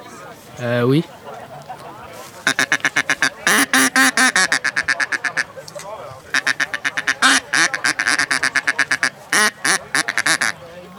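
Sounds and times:
speech: 0.6s - 1.2s
laughter: 0.9s - 10.7s
female mallard duck quacking: 2.4s - 5.6s, 6.3s - 10.6s.

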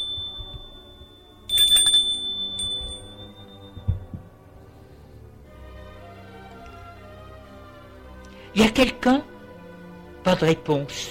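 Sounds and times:
doorbell ringing: 0.0s - 4.3s
speech: 8.6s - 9.3s, 10.2s - 11.1s.

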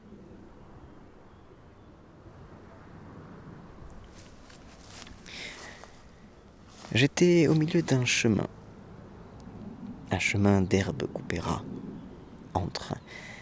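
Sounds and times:
airplane passing overhead above a field of tall grass: 0.0s - 13.4s
insects buzzing and chirping in tall grass: 3.7s - 13.4s
speech: 6.9s - 8.6s, 10.2s - 11.8s, 12.5s - 13.3s.

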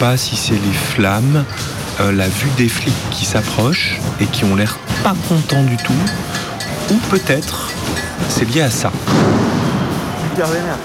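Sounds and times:
speech: 0.0s - 9.3s, 10.4s - 10.8s
noisy crowd at burning barricades: 0.0s - 10.8s
homemade firecracker from a camping gas canister blasting: 9.0s - 10.6s.

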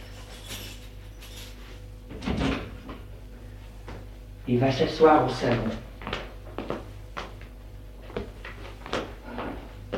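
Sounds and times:
door swinging shut with a solid thud: 2.1s - 2.8s
speech: 4.5s - 5.9s.

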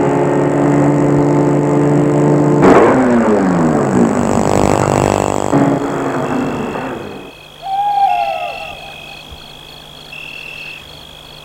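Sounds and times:
car engine humming as it slows and pulls to a stop under trees in a wood: 0.0s - 11.4s
owl hooting in a wood: 5.9s - 11.4s.

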